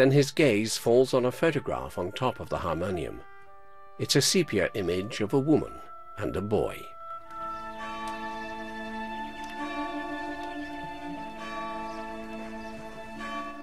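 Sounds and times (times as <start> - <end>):
speech: 0.0 - 3.3, 4.0 - 7.0
church bell ringing: 0.0 - 13.6.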